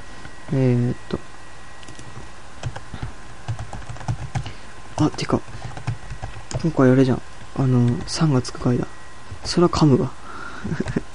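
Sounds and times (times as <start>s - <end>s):
speech: 0.5s - 1.3s, 5.0s - 5.5s, 6.6s - 11.0s
typing on a computer keyboard: 1.8s - 6.7s, 7.8s - 8.2s.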